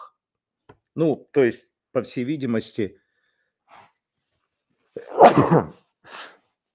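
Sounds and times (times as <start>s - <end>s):
speech: 1.0s - 3.0s, 5.0s - 6.3s
breathy sniff: 3.2s - 4.0s, 5.9s - 6.6s
loud sneeze: 5.0s - 6.3s.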